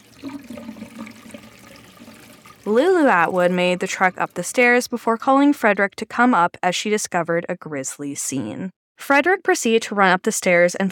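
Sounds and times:
water running from a tap upstairs: 0:00.0 - 0:04.9
speech: 0:02.6 - 0:10.9.

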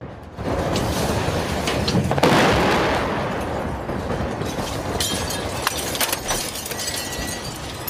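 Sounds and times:
massive explosion from an airstrike on a maternity ward: 0:00.0 - 0:05.6
rumbling, crackling debris from an airstrike explosion: 0:00.0 - 0:07.8.

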